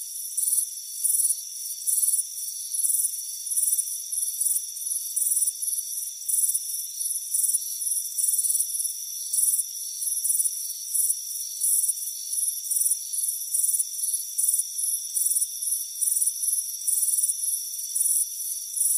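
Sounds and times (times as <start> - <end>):
crickets chirping on a warm afternoon front porch: 0.0 - 18.9.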